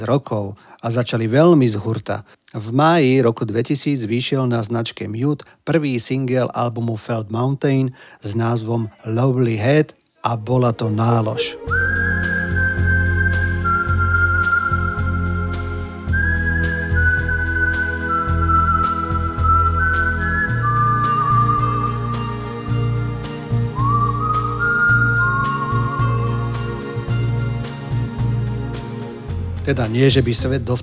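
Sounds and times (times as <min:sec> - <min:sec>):
speech: 0:00.0 - 0:12.4, 0:29.7 - 0:30.8
soft steady brushed rhythm: 0:10.6 - 0:30.6
lush strings: 0:10.8 - 0:30.1
high melody whistled by a singer: 0:11.0 - 0:28.5.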